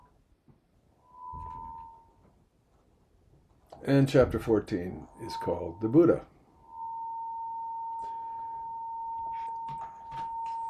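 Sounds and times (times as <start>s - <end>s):
steady electronic ringing tone from a small audio recorder: 1.0s - 2.2s, 4.9s - 10.6s
speech: 3.8s - 6.3s.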